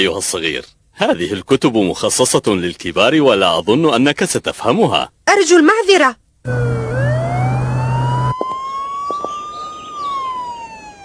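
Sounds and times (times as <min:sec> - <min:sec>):
speech: 0:00.0 - 0:06.8
low engine rumble: 0:06.4 - 0:11.0
police car siren wailing: 0:06.5 - 0:11.0.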